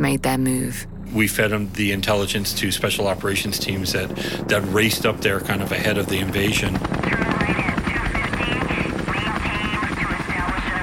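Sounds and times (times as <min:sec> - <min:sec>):
speech: 0:00.0 - 0:07.8
helicopter roar with rhythmic rotor thump: 0:00.0 - 0:10.8.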